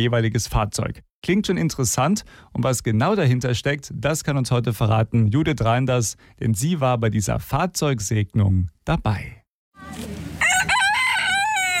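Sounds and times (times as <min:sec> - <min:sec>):
speech: 0:00.0 - 0:10.1
rooster crowing on a farm: 0:10.4 - 0:11.7.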